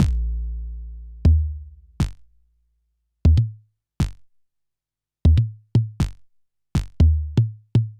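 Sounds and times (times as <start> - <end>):
drum machine beat: 0.0 - 2.4, 3.3 - 4.3, 5.3 - 7.9.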